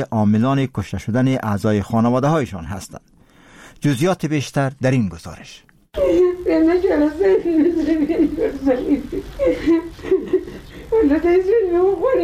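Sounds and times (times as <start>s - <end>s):
speech: 0.0s - 3.1s, 3.8s - 12.2s
woman sobbing and wailing: 6.0s - 12.2s.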